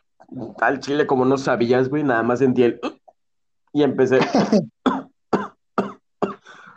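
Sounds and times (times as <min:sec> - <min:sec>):
speech: 0:00.3 - 0:02.9, 0:03.7 - 0:04.8
voice imitating a coughing fit: 0:04.2 - 0:06.5.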